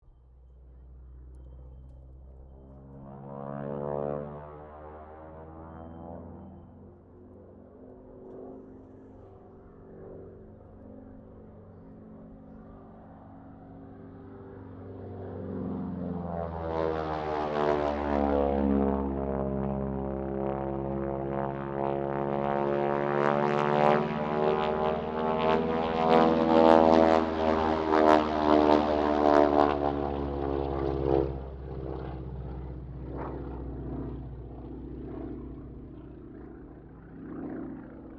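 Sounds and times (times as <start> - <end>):
AT-6D Harvard MK III aircraft flying a loop: 0.0 - 38.1.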